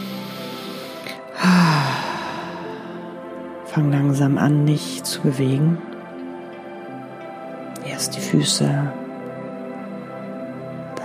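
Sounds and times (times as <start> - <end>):
deep breath with sighing exhale during a guided meditation: 0.0 - 3.3
speech: 3.7 - 5.9, 8.0 - 9.0.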